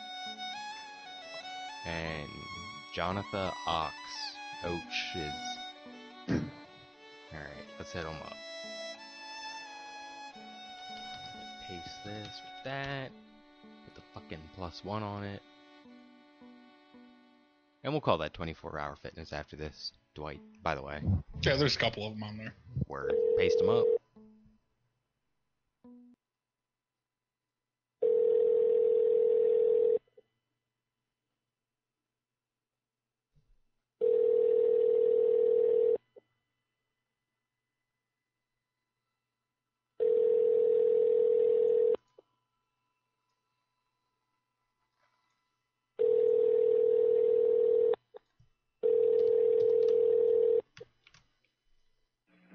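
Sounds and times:
speech: 1.9 - 5.6, 7.3 - 8.5, 11.7 - 13.2, 14.2 - 15.5, 17.8 - 24.0
phone line electronic ring tones: 23.0 - 24.0, 28.0 - 30.0, 34.0 - 36.0, 40.0 - 42.0, 46.0 - 48.0, 48.8 - 50.6.

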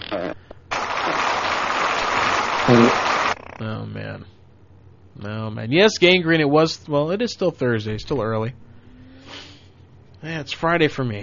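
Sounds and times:
crowd applause sound effect from a soundboard: 0.7 - 3.4
speech: 2.7 - 2.9, 3.6 - 4.4, 5.2 - 8.6, 10.2 - 11.2.

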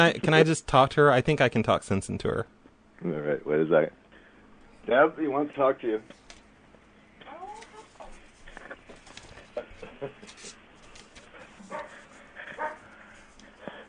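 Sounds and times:
speech: 0.0 - 4.0, 4.8 - 6.2, 10.0 - 10.5
noisy room tone: 0.0 - 13.8
clucking-like animal sounds: 7.3 - 8.2
small dog barking in short yips: 11.7 - 12.0, 12.6 - 12.8.

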